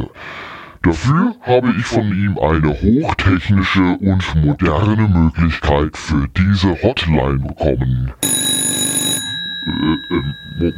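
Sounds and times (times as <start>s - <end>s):
speech: 0.8s - 8.5s, 9.6s - 10.7s
telephone ringing with an electronic trill: 8.2s - 10.7s.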